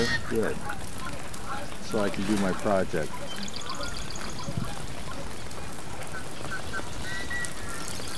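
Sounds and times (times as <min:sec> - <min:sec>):
steady noise: 0:00.0 - 0:08.1
yellow-headed blackbird harsh honking calls: 0:00.0 - 0:08.1
speech: 0:00.1 - 0:03.7.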